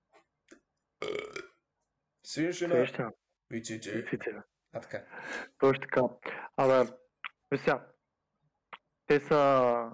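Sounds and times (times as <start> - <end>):
loud throaty burp: 1.0 - 1.6
speech: 2.3 - 7.9, 9.1 - 9.9.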